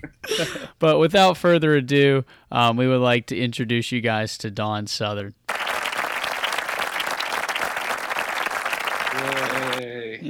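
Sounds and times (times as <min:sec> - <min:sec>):
speech: 0:00.0 - 0:05.4
crowd applauding: 0:05.5 - 0:09.8.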